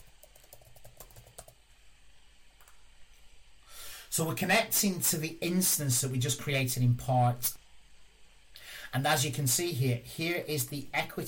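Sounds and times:
light keystrokes typing a password on a computer keyboard: 0:00.0 - 0:01.6
speech: 0:04.1 - 0:07.6, 0:08.9 - 0:11.2.

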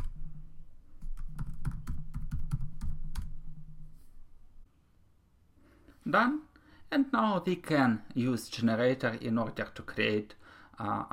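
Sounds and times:
typing and pressing the Enter key on a computer keyboard: 0:01.0 - 0:03.4
speech: 0:06.1 - 0:11.1.

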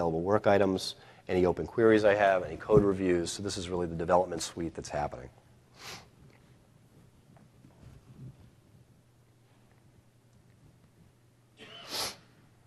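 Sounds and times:
speech: 0:00.0 - 0:06.0
low hum: 0:00.0 - 0:12.6
soft breathy sniff: 0:05.8 - 0:06.1, 0:11.6 - 0:12.3
sharp sneeze: 0:11.6 - 0:12.4.

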